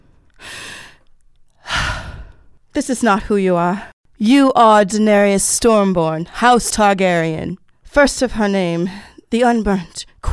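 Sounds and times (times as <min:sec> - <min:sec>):
slow deliberate calming breaths: 0:00.0 - 0:02.6
speech: 0:02.8 - 0:10.3.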